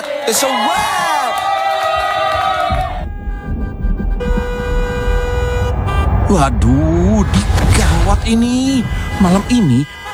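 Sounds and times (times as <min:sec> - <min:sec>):
speech: 0:00.2 - 0:01.5, 0:06.3 - 0:10.1
car horn blasts in a traffic jam: 0:01.8 - 0:10.1
low rumble of idling traffic: 0:02.6 - 0:10.1.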